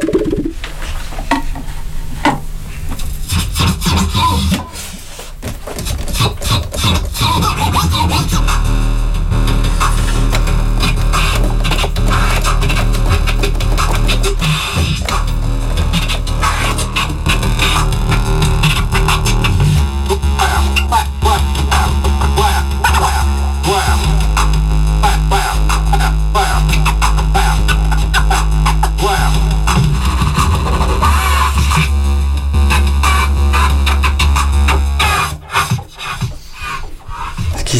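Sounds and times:
vinyl record scratched by hand on a turntable: 0.0 - 0.7, 3.2 - 37.7
loud droning bass-heavy sound: 7.4 - 35.4.

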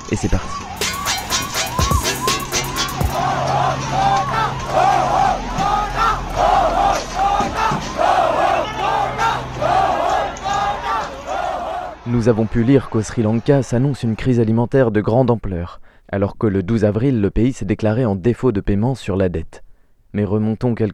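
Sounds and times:
siren-like wailing tone: 0.0 - 13.6
speech: 0.1 - 0.7, 12.1 - 20.9
large protest crowd chanting and shouting: 0.8 - 14.3.

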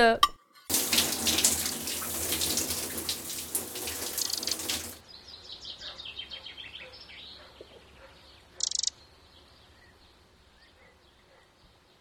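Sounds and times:
speech: 0.0 - 0.3
water gushing from a tap in a bathroom: 0.7 - 5.0
faint high chirps: 5.3 - 10.0.

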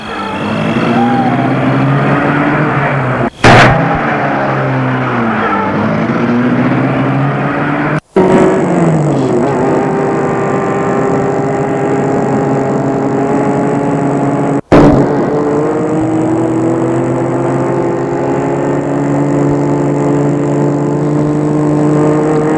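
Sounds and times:
car engine starting and driving off: 0.0 - 22.5.

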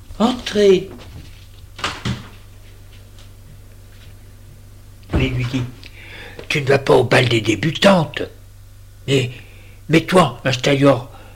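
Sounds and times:
speech: 0.2 - 1.0, 5.5 - 5.8, 6.5 - 8.4, 9.1 - 11.1
door swinging shut and latching with a thud: 1.8 - 2.4, 5.1 - 5.8.

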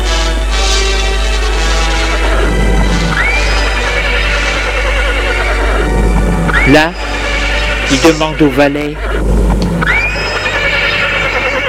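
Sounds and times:
low steady hum: 0.0 - 11.6
horse neighing in a castle stable: 2.4 - 11.6
speech: 6.7 - 7.2, 7.9 - 9.5.

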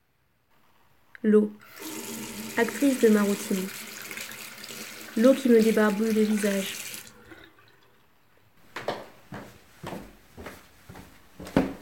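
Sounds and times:
speech: 1.2 - 1.9, 2.6 - 3.8, 5.2 - 6.8
wooden stairs creaking as a person walks down in a town home: 8.7 - 11.8.

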